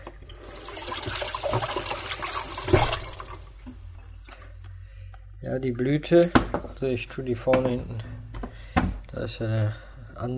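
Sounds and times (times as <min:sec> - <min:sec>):
running water splashing as zucchini are rinsed: 0:00.3 - 0:03.8
speech: 0:05.5 - 0:08.1, 0:09.2 - 0:10.3.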